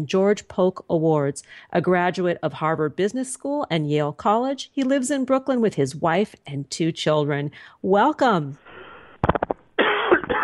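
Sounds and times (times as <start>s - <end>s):
speech: 0.0s - 8.7s
quick sharp coughs: 9.8s - 10.4s.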